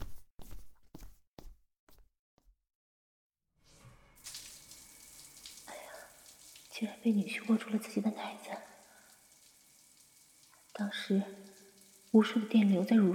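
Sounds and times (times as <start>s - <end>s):
water running for a bath or shower: 3.8s - 13.1s
speech: 6.8s - 8.7s, 10.8s - 11.4s, 12.1s - 13.1s.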